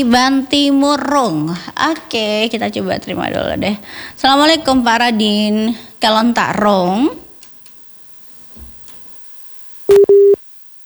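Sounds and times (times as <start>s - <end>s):
speech: 0.0s - 7.2s
telephone busy tone after a phone call drops: 9.9s - 10.4s.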